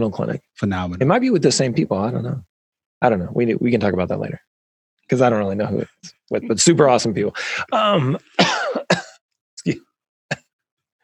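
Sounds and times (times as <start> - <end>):
speech: 0.0 - 4.5, 5.1 - 9.0, 9.6 - 10.4
man coughing: 7.7 - 9.2, 10.3 - 10.5.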